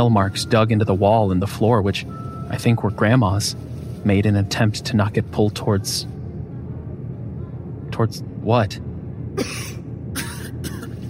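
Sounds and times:
speech: 0.0 - 6.2, 8.0 - 10.3
low steady hum: 0.0 - 11.0
harsh coughs: 9.4 - 11.0.

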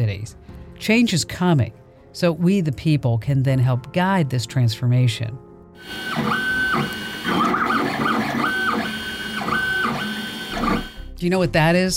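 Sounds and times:
speech: 0.1 - 7.7, 11.2 - 11.9
3D printer mechanical whirring: 5.8 - 11.0
3D printer stepper motors whining: 5.8 - 11.0.

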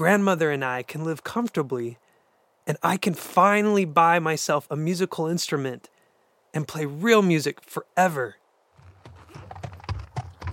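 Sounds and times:
speech: 0.0 - 2.0, 2.7 - 5.9, 6.5 - 8.4
horse hooves trotting in the countryside: 8.8 - 10.5.

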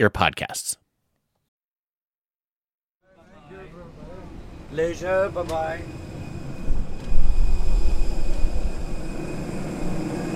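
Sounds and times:
speech: 0.0 - 0.8, 4.7 - 6.0
faint high whine: 3.1 - 10.3
airplane rumble on arrival at an airport in Namibia: 3.2 - 10.3.

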